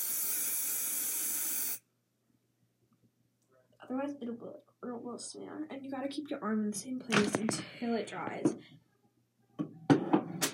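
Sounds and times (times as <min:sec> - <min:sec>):
hairspray sprayed from an aerosol can: 0:00.0 - 0:01.8
speech: 0:03.9 - 0:08.8.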